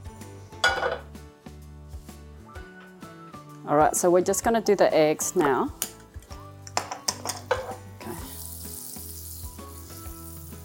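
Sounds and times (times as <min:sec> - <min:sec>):
metal frying pan clattering and clinking: 0:00.6 - 0:01.1, 0:06.8 - 0:07.8
speech: 0:03.7 - 0:05.8.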